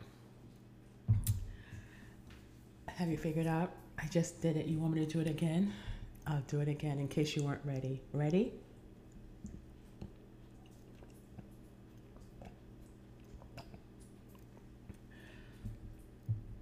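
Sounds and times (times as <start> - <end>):
speech: 2.9 - 8.7
person drinking a cup of water: 8.8 - 16.5.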